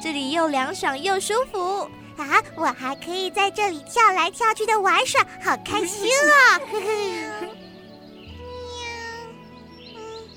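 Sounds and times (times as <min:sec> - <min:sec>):
speech: 0:00.0 - 0:07.6
laughter: 0:05.7 - 0:07.6
kitten-like cat meowing weakly: 0:08.6 - 0:09.3.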